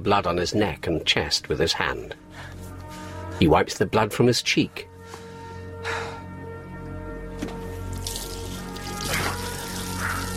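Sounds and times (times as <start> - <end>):
speech: 0.0 - 2.6, 3.4 - 4.9
tap water running and splashing into a sink: 8.0 - 10.3.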